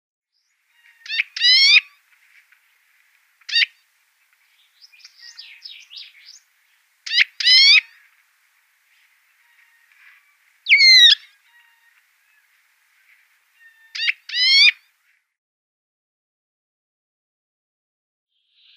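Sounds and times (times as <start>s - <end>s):
house bunting calls: 0.7s - 2.6s, 3.4s - 3.8s, 4.8s - 8.2s, 9.0s - 14.8s.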